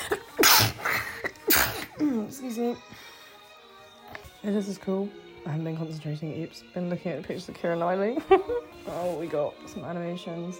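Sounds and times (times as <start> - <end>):
person sneezing: 0.0 - 2.2
speech: 2.3 - 3.0, 4.4 - 10.5.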